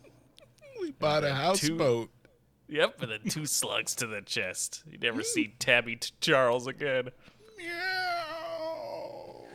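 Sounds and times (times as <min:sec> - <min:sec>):
speech: 0:00.9 - 0:07.8
person's voice imitating a cat's meow: 0:07.5 - 0:09.5.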